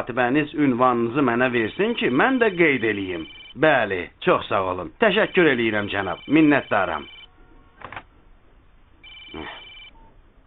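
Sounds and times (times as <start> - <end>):
speech: 0.0 - 7.2, 9.3 - 9.6
telephone ringing with an electronic ring tone: 1.8 - 3.7, 5.4 - 7.3, 9.0 - 10.0.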